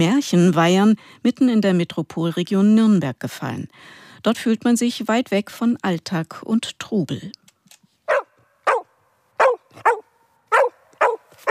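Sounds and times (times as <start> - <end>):
speech: 0.0 - 7.4
female herding dog barking excitedly in Bubenreuth Germany: 8.1 - 11.4.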